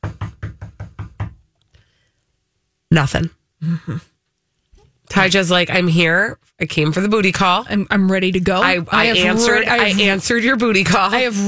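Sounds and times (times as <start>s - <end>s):
firm knocks on a wooden door: 0.0s - 1.5s
speech: 2.9s - 4.1s, 5.1s - 11.4s.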